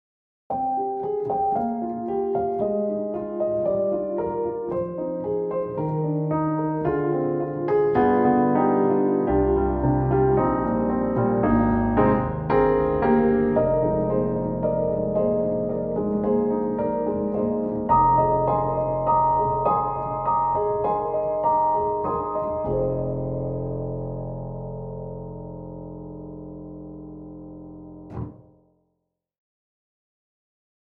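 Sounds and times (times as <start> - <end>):
grand warm emotional piano rhapsody: 0.5 - 28.4.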